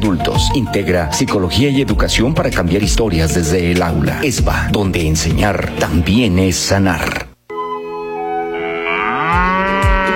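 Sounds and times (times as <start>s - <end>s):
speech: 0.0s - 7.3s
cow mooing: 8.4s - 10.1s.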